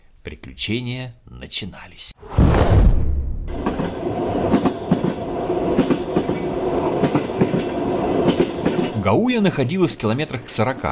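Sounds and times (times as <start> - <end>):
speech: 0.2 - 3.0, 9.0 - 10.8
electric commuter train wheels clattering over rail joints: 3.5 - 9.0.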